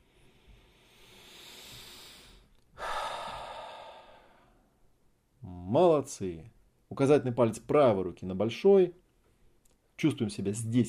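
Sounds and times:
deep breath in and out during a guided breathing exercise: 0.0s - 4.8s
speech: 5.7s - 9.0s, 10.0s - 10.8s.

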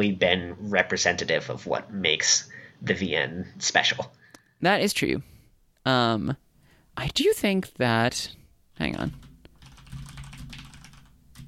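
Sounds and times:
speech: 0.0s - 6.4s, 7.0s - 9.2s
rapid computer keyboard typing clicks: 9.0s - 11.4s.

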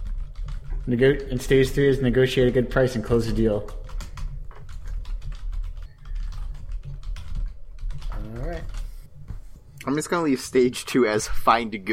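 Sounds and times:
computer keyboard typing as notes are written: 0.0s - 9.1s
speech: 0.8s - 3.8s, 9.8s - 11.9s.

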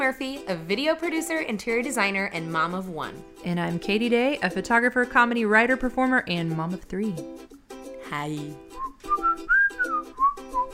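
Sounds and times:
speech: 0.0s - 7.5s, 8.1s - 9.6s
people whistling a short bright melody: 8.8s - 10.7s.

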